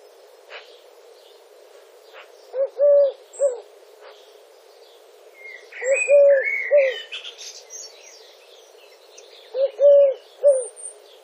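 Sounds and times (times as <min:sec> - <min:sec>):
Streptopelia decaocto Eurasian collared dove cooing: 0:02.5 - 0:03.7, 0:05.4 - 0:07.2, 0:09.5 - 0:10.8
other birds chirping and whistling: 0:05.4 - 0:11.0.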